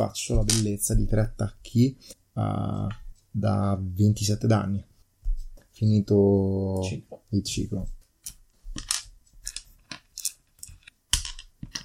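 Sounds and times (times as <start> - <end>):
speech: 0.0 - 4.9, 5.8 - 8.0
plastic dice clattering as they are scooped up: 8.2 - 11.8.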